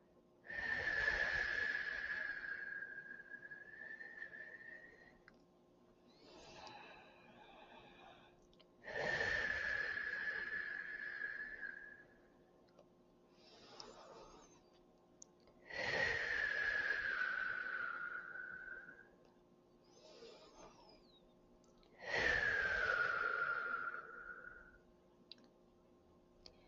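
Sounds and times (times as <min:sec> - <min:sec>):
slow deep breathing during a breathing exercise: 0:00.4 - 0:14.7, 0:15.5 - 0:19.2, 0:21.8 - 0:24.8.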